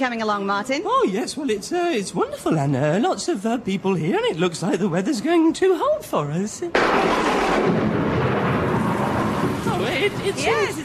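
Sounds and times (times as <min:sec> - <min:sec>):
speech: 0:00.0 - 0:08.0, 0:10.0 - 0:10.8
hail pelting on metal armour: 0:06.8 - 0:10.8.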